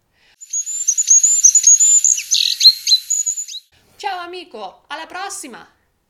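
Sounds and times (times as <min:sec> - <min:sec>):
goldcrest whistling call on a mountain trail in falling snow: 0:00.4 - 0:03.7
speech: 0:04.1 - 0:05.8.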